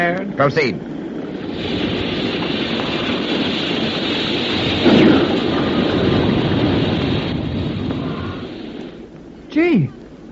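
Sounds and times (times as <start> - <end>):
speech: 0.0 - 0.9, 1.5 - 1.8, 9.6 - 10.0
rushing churning water as a submarine surfaces: 1.3 - 9.0.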